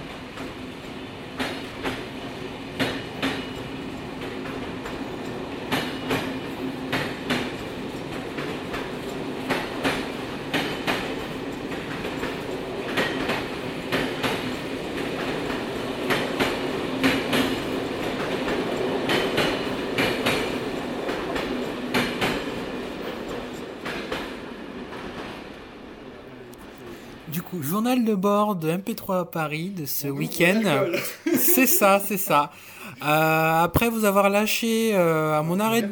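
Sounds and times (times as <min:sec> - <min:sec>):
TGV high-speed train in motion, low rumble: 0:00.0 - 0:28.0
TGV high-speed train wheels clacking over rail joints: 0:00.2 - 0:25.8
speech: 0:27.5 - 0:35.9
laughter: 0:30.2 - 0:33.7.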